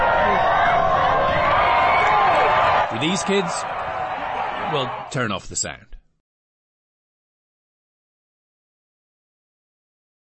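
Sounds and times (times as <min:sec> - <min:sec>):
football game crowd roaring: 0:00.0 - 0:05.3
speech: 0:03.1 - 0:03.8, 0:04.7 - 0:06.0.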